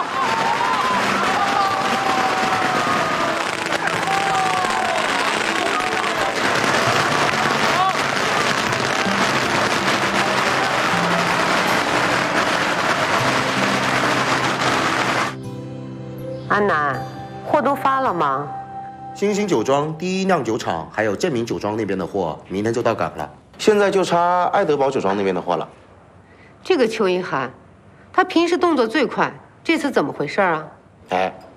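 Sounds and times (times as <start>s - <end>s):
crowd voices: 0.0s - 15.4s
long string of firecrackers exploding: 0.0s - 15.4s
speech: 16.6s - 16.8s, 17.6s - 18.6s, 19.2s - 25.8s, 26.6s - 27.6s, 28.2s - 31.4s.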